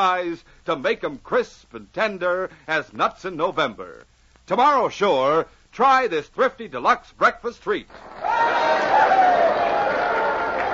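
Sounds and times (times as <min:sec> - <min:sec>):
speech: 0:00.0 - 0:09.3
crowd roaring and cheering: 0:07.9 - 0:10.7.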